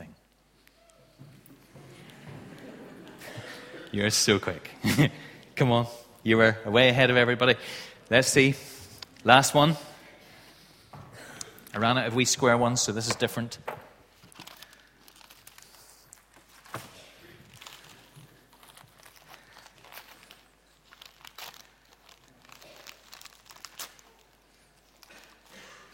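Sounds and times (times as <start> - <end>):
laughter: 1.7 - 5.4
speech: 3.9 - 9.9, 11.7 - 13.8
wrapping paper crinkling as a gift is opened: 14.1 - 25.9.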